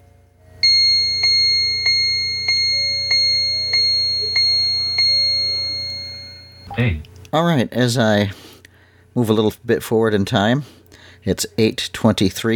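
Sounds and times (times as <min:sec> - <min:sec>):
steady low hum: 0:00.0 - 0:07.3
time and temperature clock chiming the hour: 0:00.6 - 0:06.7
speech: 0:06.8 - 0:08.4, 0:09.2 - 0:12.5.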